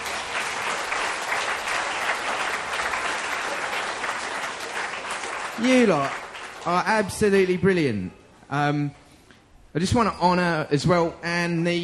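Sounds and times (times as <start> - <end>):
audience applause for children's nativity play: 0.0 - 7.4
speech: 5.6 - 9.0, 9.8 - 11.8.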